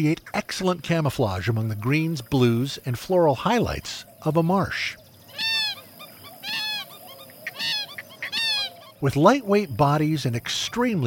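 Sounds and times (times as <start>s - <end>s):
speech: 0.0s - 5.0s, 9.0s - 11.0s
Purple Gallinule loud harsh honking calls: 5.3s - 9.0s
Purple Gallinule soft short clucks: 5.3s - 9.0s.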